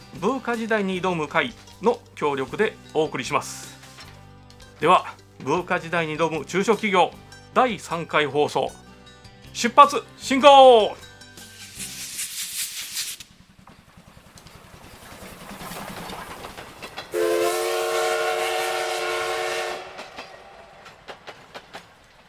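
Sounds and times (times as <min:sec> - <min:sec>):
speech: 0:00.1 - 0:03.8, 0:04.8 - 0:08.8, 0:09.6 - 0:11.0
steam train chuffing: 0:13.2 - 0:22.2
train clattering on the rails: 0:13.4 - 0:18.2, 0:19.7 - 0:22.2
steam locomotive whistle: 0:17.1 - 0:20.5.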